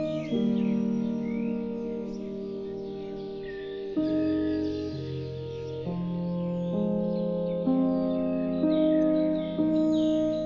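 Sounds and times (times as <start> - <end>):
birds chirping and twittering: 0.0 - 10.4
slow ambient music of sustained chords: 0.0 - 10.4.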